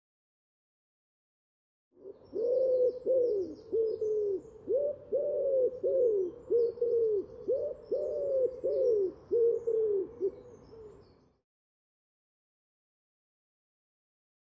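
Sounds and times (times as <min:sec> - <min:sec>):
common wood pigeon cooing: 0:02.0 - 0:11.0.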